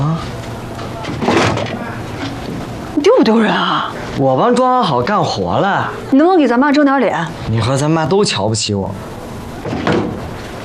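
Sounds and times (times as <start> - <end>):
door closing with a thud: 1.0 - 1.9, 9.6 - 10.4
speech: 3.2 - 9.2.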